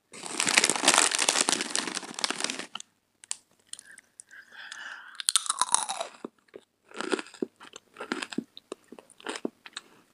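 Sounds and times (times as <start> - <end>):
loud crinkly rustle: 0.0 - 2.8
crunching and chewing potato chips: 0.2 - 9.9.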